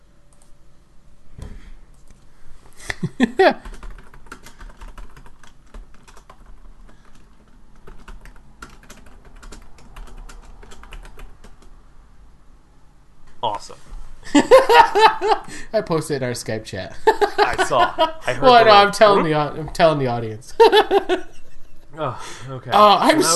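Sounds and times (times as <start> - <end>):
speech: 3.0 - 3.7, 15.0 - 21.3, 22.0 - 23.3
typing on a computer keyboard: 3.6 - 11.7
laughter: 14.3 - 15.7, 17.0 - 19.3, 20.5 - 22.0, 22.8 - 23.3.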